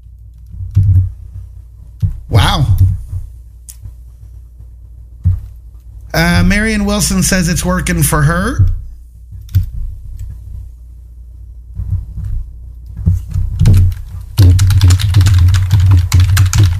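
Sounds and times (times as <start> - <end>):
low desk rumble: 0.0 - 16.7
speech: 6.4 - 8.7
loud typing on a computer keyboard: 13.6 - 16.7.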